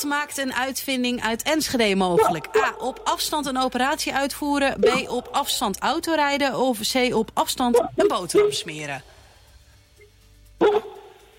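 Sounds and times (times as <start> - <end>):
speech: 0.0 - 9.1
dog barking: 2.2 - 2.9, 7.8 - 8.7, 10.6 - 11.2.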